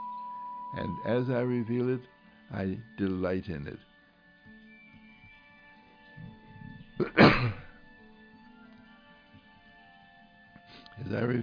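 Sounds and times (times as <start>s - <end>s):
speech: 0.7s - 3.9s, 7.0s - 7.6s, 11.1s - 11.4s
single loud sneeze: 7.0s - 7.7s.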